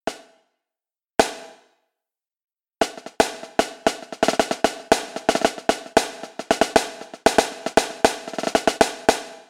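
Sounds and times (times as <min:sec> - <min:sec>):
marching snare drum: 0:01.2 - 0:01.6, 0:02.8 - 0:09.4.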